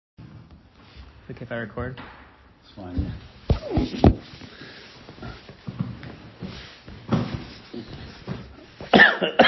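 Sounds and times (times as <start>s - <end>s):
speech: 1.3s - 4.4s, 9.2s - 9.4s
dry tickly coughs: 8.8s - 9.4s.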